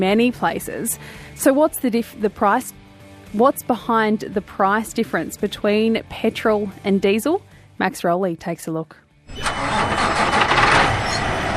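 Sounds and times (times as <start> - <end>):
speech: 0.0 - 10.0
triple road train livestock truck engines idling at a refueling depot in Katherine: 9.4 - 11.5.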